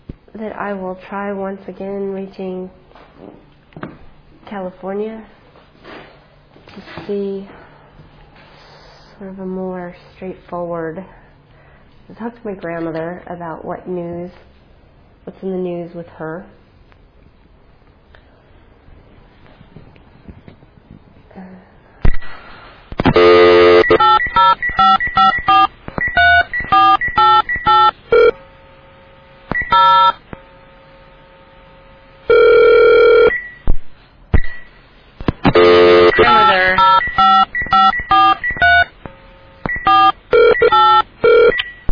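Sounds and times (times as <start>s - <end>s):
speech: 0.4s - 3.4s, 4.5s - 5.4s, 6.8s - 7.6s, 9.2s - 11.2s, 12.1s - 14.5s, 15.2s - 16.6s
steady held telephone tone: 23.0s - 28.4s, 29.5s - 33.6s, 35.5s - 41.9s
touch-tone keypad beeps dialing a telephone call: 23.2s - 28.3s, 29.5s - 30.2s, 35.6s - 38.9s, 39.7s - 41.9s.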